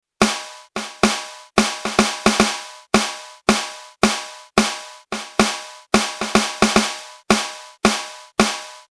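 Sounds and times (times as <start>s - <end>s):
snare drum with multiband compression: 0.2s - 8.8s.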